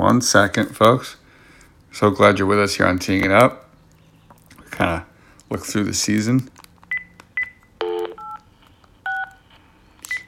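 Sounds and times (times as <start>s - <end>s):
speech: 0.0s - 1.2s, 1.9s - 3.6s, 4.8s - 6.5s
low constant hum: 0.0s - 10.2s
telephone keypad tones as a number is dialed: 6.9s - 8.5s, 9.1s - 9.5s.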